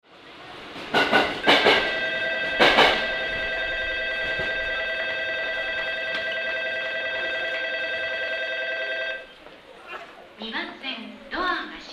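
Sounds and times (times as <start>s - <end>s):
Shin-Okubo train station bell jingle in Tokyo: 1.4s - 9.3s.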